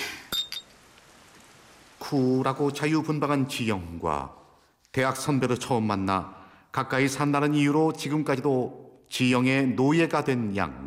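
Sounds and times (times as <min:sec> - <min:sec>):
glasses clinking in a toast: 0:00.2 - 0:00.7
speech: 0:02.1 - 0:04.4, 0:05.0 - 0:10.8.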